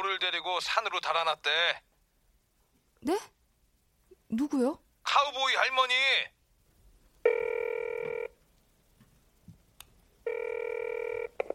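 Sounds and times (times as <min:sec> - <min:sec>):
speech: 0:00.2 - 0:01.9, 0:03.0 - 0:03.4, 0:04.3 - 0:06.4
telephone ringback tone: 0:07.3 - 0:08.4, 0:10.2 - 0:11.5.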